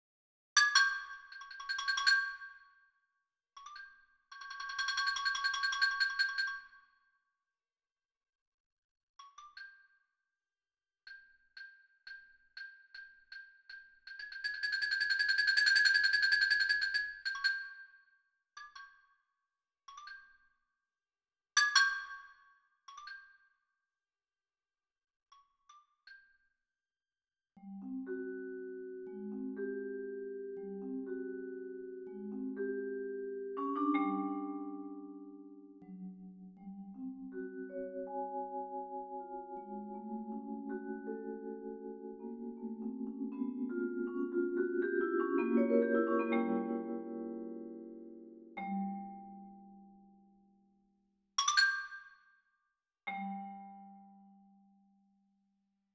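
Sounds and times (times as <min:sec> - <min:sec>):
mallet percussion: 0:00.6 - 0:02.6, 0:03.6 - 0:06.8, 0:14.2 - 0:17.8, 0:27.6 - 0:50.2, 0:51.4 - 0:52.2, 0:53.1 - 0:54.6.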